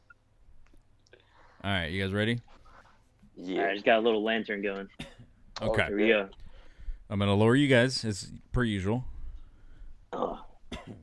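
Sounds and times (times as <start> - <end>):
speech: 1.6 - 2.6, 3.4 - 6.4, 7.1 - 9.1
person coughing: 4.9 - 5.3, 10.1 - 11.0
throat clearing: 10.1 - 11.0.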